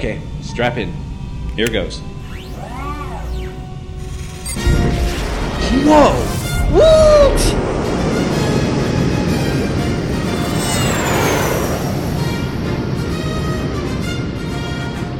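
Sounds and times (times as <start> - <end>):
speech: 0.0 - 2.9, 5.7 - 7.7
high whine sweeping downward: 0.0 - 14.1
thrust lifter engine firing: 0.0 - 14.4.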